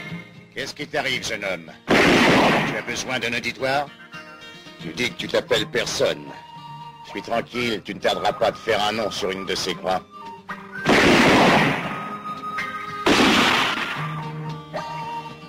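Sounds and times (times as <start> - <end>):
speech: 0.6 - 4.0, 4.9 - 6.5, 7.1 - 10.1
bomb explosion blasts: 1.9 - 3.0, 10.9 - 12.1, 13.1 - 13.9.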